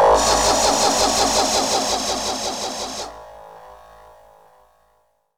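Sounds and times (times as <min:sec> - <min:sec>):
jungle vocal laser effect: 0:00.2 - 0:03.2.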